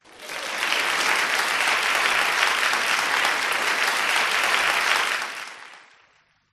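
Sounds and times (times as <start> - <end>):
short human crowd applause: 0.0 - 6.2.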